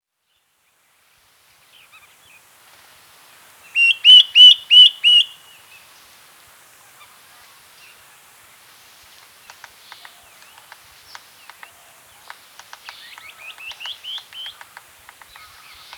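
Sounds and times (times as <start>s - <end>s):
common woodshrike calling: 3.8s - 5.4s, 9.5s - 15.9s.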